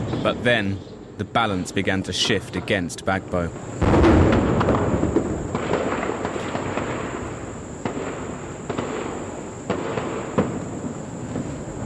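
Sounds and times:
speech: 0.2s - 4.2s
heavy gunfire outside during armed fighting in a city: 3.7s - 11.7s.

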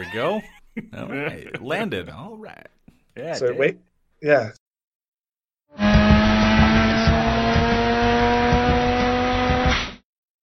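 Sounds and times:
speech: 0.0s - 4.6s
drifting car engine roaring: 5.7s - 10.0s
drifting car tires screeching: 5.7s - 10.0s.

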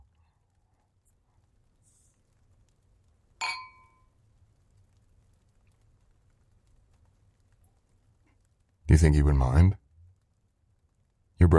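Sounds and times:
quiet low room hum: 0.0s - 11.5s
wine glasses clinking in a toast: 3.4s - 4.0s
speech: 8.9s - 9.8s, 11.4s - 11.5s.

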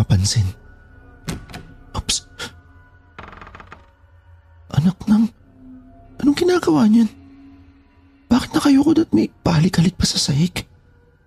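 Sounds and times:
speech: 0.2s - 0.6s, 6.4s - 7.2s, 8.6s - 10.7s
bedroom door handle and latch clicks: 1.2s - 1.8s.

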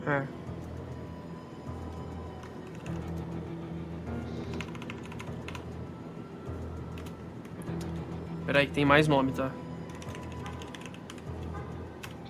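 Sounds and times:
speech: 0.1s - 0.4s, 8.5s - 9.6s
typing on a keyboard: 2.4s - 3.2s, 4.4s - 5.7s, 6.9s - 8.0s, 9.8s - 12.2s.

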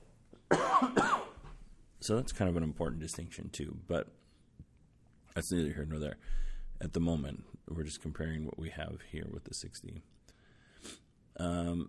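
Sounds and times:
person coughing: 0.5s - 1.4s
speech: 2.0s - 4.2s, 5.4s - 10.2s, 10.8s - 11.8s.

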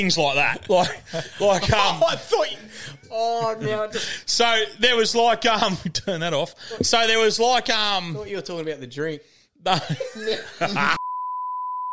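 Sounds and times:
speech: 0.0s - 11.0s
high-pitched censor bleep: 11.0s - 11.9s.

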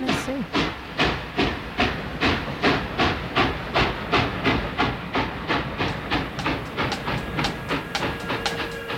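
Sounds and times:
train rolling on rails with clickety-clack: 0.0s - 8.9s.

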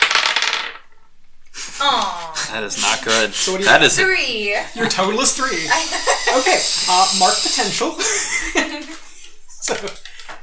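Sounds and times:
two dice clattering on a hard surface: 0.0s - 0.9s
speech: 2.5s - 9.0s, 9.6s - 10.0s
laughter: 4.6s - 9.8s.

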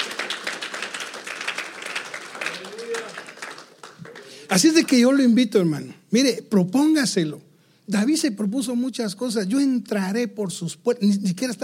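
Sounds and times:
church audience applauding after preaching: 0.0s - 5.1s
speech: 4.5s - 11.6s.

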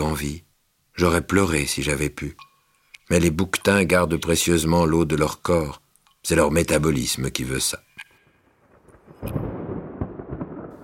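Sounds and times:
speech: 0.0s - 2.5s, 3.1s - 7.8s, 9.2s - 9.4s
rolling thunder: 8.3s - 10.8s.

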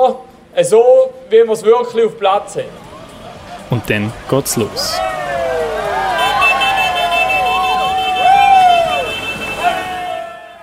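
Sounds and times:
speech: 0.0s - 2.9s, 3.7s - 5.2s
crowd cheering: 2.8s - 10.6s
emergency vehicle sirens from a parade of emergency vehicles rolling past: 2.8s - 10.6s.

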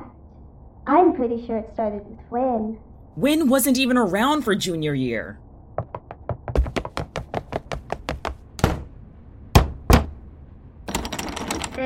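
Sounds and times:
speech: 0.9s - 5.9s
knocking on a door: 5.8s - 10.2s.

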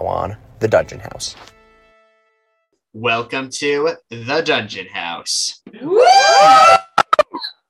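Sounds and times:
speech: 0.0s - 1.6s, 2.9s - 6.8s
cheers and whoops: 5.8s - 7.2s
excited group screaming: 5.8s - 7.3s.

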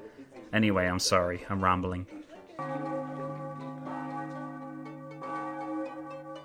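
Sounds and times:
speech: 0.5s - 3.0s
church bells ringing: 2.6s - 6.4s.

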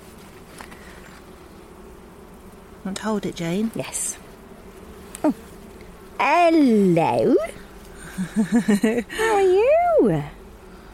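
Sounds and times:
faint rustle: 0.0s - 6.2s, 6.8s - 9.0s
honeybees buzzing in an open hive: 0.0s - 10.9s
speech: 2.8s - 4.2s, 5.2s - 5.4s, 6.2s - 7.5s, 8.2s - 10.4s
laughter: 8.0s - 9.4s.

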